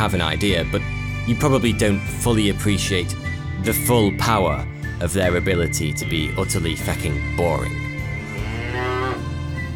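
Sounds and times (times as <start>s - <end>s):
speech: 0.0s - 7.9s
cow mooing: 8.0s - 9.7s.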